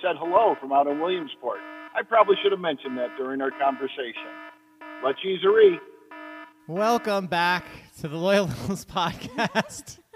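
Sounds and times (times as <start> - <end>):
speech: 0.0 - 4.4, 5.0 - 5.9, 6.7 - 10.0
loud electronic buzzer droning: 0.8 - 7.9
laughter: 8.4 - 10.1.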